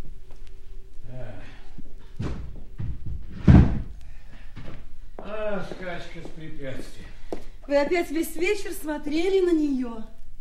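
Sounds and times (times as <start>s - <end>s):
heavy knocks on a locked door: 2.2s - 3.9s
speech: 5.6s - 10.2s.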